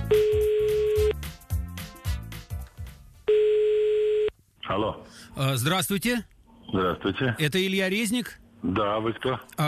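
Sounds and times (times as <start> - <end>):
steady held telephone dial tone: 0.1 - 1.2, 3.3 - 4.3
speech: 5.4 - 9.6.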